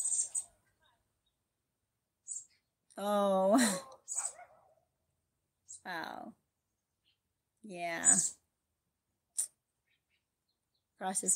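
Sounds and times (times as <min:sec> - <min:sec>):
speech: 0:03.0 - 0:03.9, 0:07.6 - 0:08.4, 0:11.0 - 0:11.3
neighbor's dog barking: 0:04.2 - 0:04.9.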